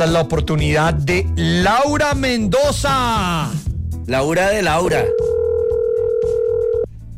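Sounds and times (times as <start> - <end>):
speech: 0.0 - 5.3
telephone ringing tone on an outgoing call: 5.0 - 6.9.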